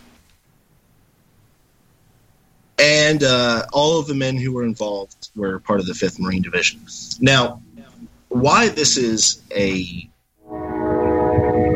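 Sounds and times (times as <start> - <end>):
speech: 2.8 - 10.1
loud layered train horn blaring: 10.4 - 11.7.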